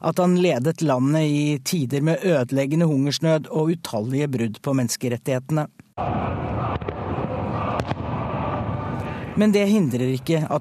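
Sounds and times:
speech: 0.0s - 6.7s, 9.4s - 10.5s
fireworks bursting with crackling and rumbling: 6.0s - 9.3s
sharp fireworks pops: 6.7s - 7.1s, 7.7s - 8.2s.

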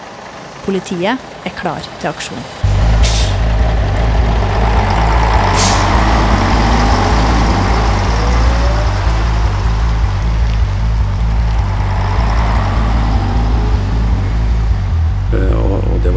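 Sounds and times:
convoy of heavy trucks rumbling past: 0.0s - 16.1s
speech: 0.7s - 2.7s
truck air brakes hissing: 1.2s - 3.6s, 5.4s - 6.4s.

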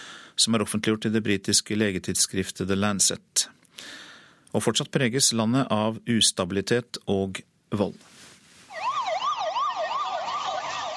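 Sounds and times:
speech: 0.4s - 8.1s
emergency siren wailing in city streets: 8.7s - 10.9s.

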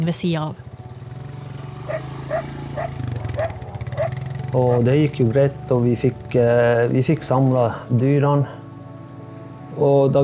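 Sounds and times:
speech: 0.0s - 0.7s, 4.5s - 8.6s, 9.8s - 10.2s
dog barking while running alongside men on ATVs herding reindeer: 1.9s - 5.0s.

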